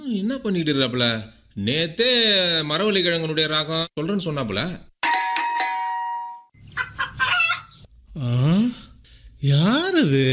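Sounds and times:
speech: 0.1 - 4.9, 8.2 - 8.8, 9.4 - 10.3
doorbell two-tone chime: 5.0 - 6.6
rooster clucking: 6.8 - 7.9.

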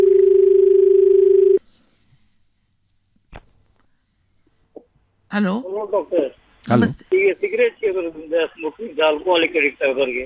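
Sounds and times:
telephone line tone as a call is taken: 0.0 - 1.6
speech: 5.4 - 10.2.

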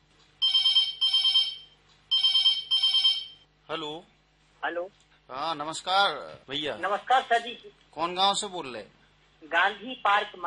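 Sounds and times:
telephone ringing with trilling electronic rings: 0.4 - 3.4
speech: 3.7 - 10.4.

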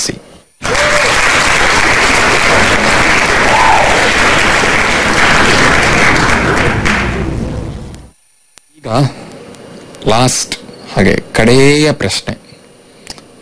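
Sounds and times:
applause sound effect rewarding quiz answers: 0.6 - 7.5
speech: 8.9 - 9.2, 10.0 - 12.4.

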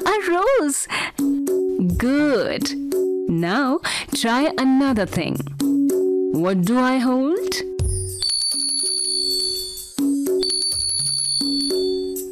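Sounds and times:
speech: 0.2 - 5.5, 6.3 - 7.7
small bell being shaken: 8.1 - 12.2.

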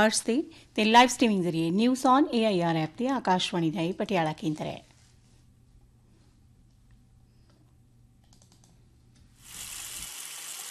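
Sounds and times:
speech: 0.0 - 4.9
water running from a faulty tap that will not close: 9.4 - 10.6.

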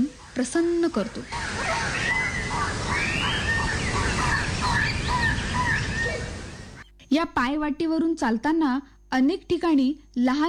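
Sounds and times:
birds chirping in a forest: 0.0 - 7.2
steady broadband hiss: 0.0 - 10.4
speech: 0.4 - 2.8, 7.1 - 10.4.

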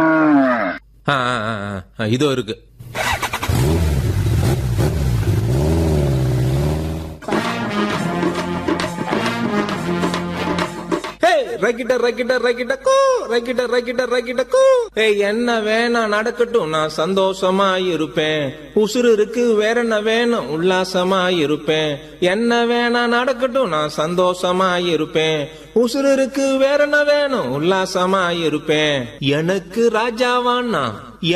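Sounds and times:
cattle mooing in a shed: 0.0 - 0.8
speech: 1.1 - 3.0, 11.6 - 31.3
motorbike engine starting and revving: 2.9 - 7.2
upbeat music with a singing voice: 7.2 - 11.3.

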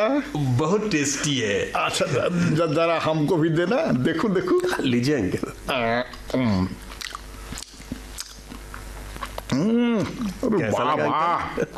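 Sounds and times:
speech: 0.0 - 6.8, 9.6 - 11.7
wet chewing and biting on a sandwich: 6.1 - 9.9.

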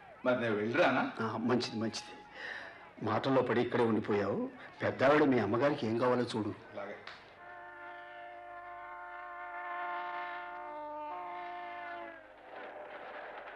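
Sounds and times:
speech: 0.2 - 7.2
train horn as a train arrives at a station: 7.4 - 13.2.

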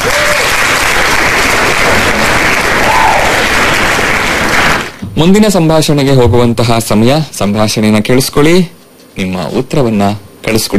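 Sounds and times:
dense applause from many hands: 0.0 - 5.0
speech: 5.2 - 10.7.

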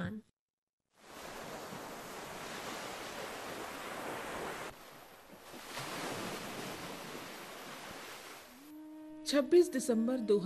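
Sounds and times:
loud roaring ocean surf crashing: 1.0 - 8.6
speech: 9.3 - 10.4.

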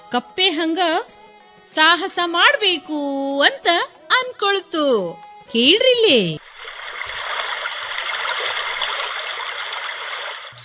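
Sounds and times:
speech: 0.1 - 6.4
river water rushing: 6.4 - 10.6.

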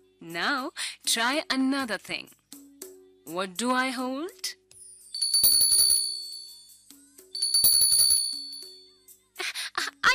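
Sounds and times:
speech: 0.2 - 2.4, 3.3 - 4.6
small hand bell being shaken: 5.1 - 6.7, 7.4 - 8.8.

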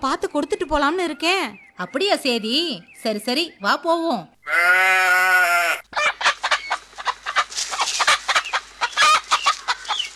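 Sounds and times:
speech: 0.0 - 5.2
flock of chickens being fed clucking and squawking: 5.7 - 10.1.

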